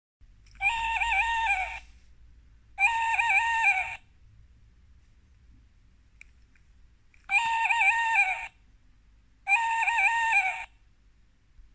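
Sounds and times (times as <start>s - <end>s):
tawny owl call: 0.6s - 2.0s, 2.8s - 4.1s, 7.3s - 8.6s, 9.5s - 10.8s.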